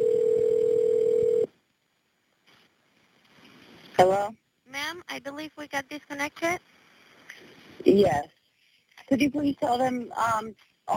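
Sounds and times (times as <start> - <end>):
steady telephone call-back tone: 0.0 - 1.5
speech: 5.0 - 6.7, 7.8 - 8.4, 9.1 - 10.9.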